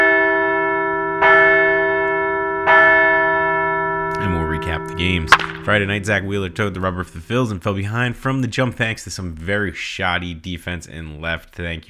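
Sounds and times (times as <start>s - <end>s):
large bell ringing: 0.0s - 7.8s
speech: 4.8s - 11.8s.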